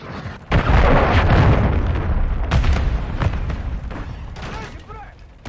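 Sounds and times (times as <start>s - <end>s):
cruise missile strike explosion in a military shooter video game: 0.5s - 3.9s.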